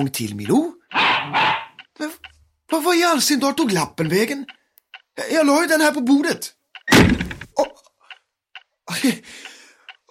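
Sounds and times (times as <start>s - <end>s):
speech: 0.0s - 4.6s, 5.2s - 7.7s, 8.9s - 9.5s
heavy thump: 6.9s - 7.5s
door banging shut from a draft: 6.9s - 7.6s.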